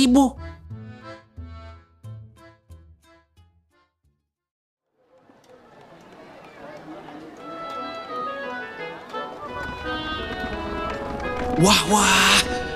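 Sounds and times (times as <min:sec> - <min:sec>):
speech: 0:00.0 - 0:00.4, 0:11.6 - 0:12.5
dense wash of busy noise: 0:05.0 - 0:11.7
horse-drawn royal carriage hooves clip-clopping: 0:05.1 - 0:11.7.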